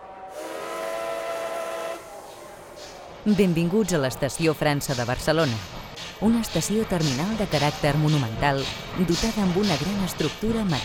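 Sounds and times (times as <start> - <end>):
departing train whistle: 0.0 - 2.7
speech: 3.2 - 10.8.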